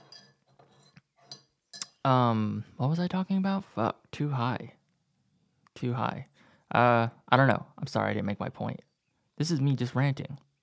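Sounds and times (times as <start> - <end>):
metal spoon stirring tea clinking against a cup: 0.0 - 0.4
spoon scraping a tea cup: 0.0 - 2.0
speech: 2.0 - 4.8, 5.8 - 10.4.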